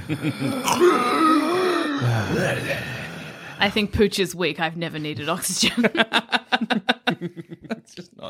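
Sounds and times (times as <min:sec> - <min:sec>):
voice imitating labored wheezy breathing while sleeping: 0:00.0 - 0:03.9
speech: 0:00.1 - 0:01.4, 0:02.0 - 0:03.0, 0:03.6 - 0:08.2
laughter: 0:05.5 - 0:08.1.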